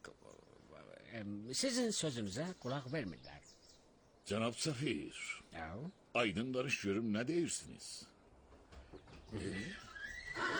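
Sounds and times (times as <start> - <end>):
low noise: 0.0 - 10.5
speech: 1.1 - 3.6, 4.3 - 8.2, 8.9 - 10.5
Iranian horse neighing: 9.3 - 10.5.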